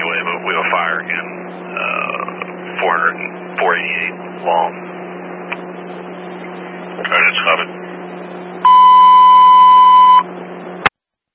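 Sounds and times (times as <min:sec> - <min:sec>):
low radio hiss: 0:00.0 - 0:09.0
speech: 0:00.8 - 0:02.1, 0:02.8 - 0:04.9, 0:07.0 - 0:07.8
county fire dispatch alert tone beep: 0:08.6 - 0:10.3.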